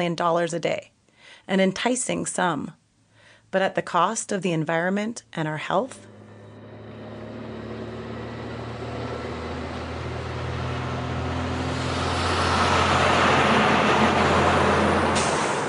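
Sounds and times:
speech: 0.0s - 2.8s, 3.5s - 6.1s
heavy fracking trucks rumbling past on a town street: 5.9s - 15.6s
air brake hiss: 15.1s - 15.6s.

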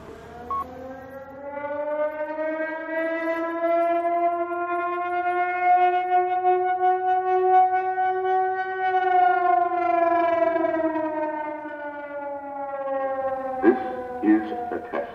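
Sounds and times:
civil defense siren wailing in weekly test: 0.0s - 15.1s
radio net control talk: 13.3s - 15.1s.

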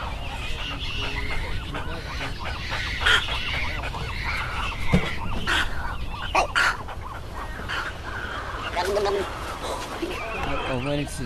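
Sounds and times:
snowy egrets bubbling guttural calls: 0.0s - 11.2s.

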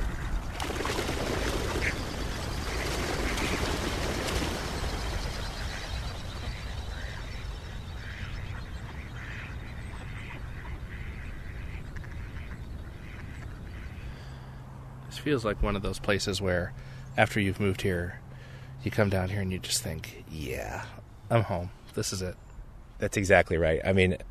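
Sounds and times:
steady wash of water: 0.0s - 7.4s
flapping noise of ducks taking off: 0.0s - 8.6s
ducks quacking as they take off: 0.0s - 14.6s
speech: 15.2s - 18.2s, 18.8s - 22.4s, 23.0s - 24.3s.

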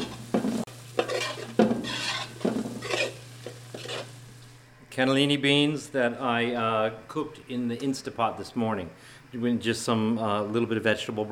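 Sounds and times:
stirring scrapes tossing pasta in a pan with oil, garlic and broccoli: 0.0s - 4.4s
gentle sizzling of oil, garlic and broccoli in a pan: 0.0s - 11.2s
speech: 5.0s - 11.2s.

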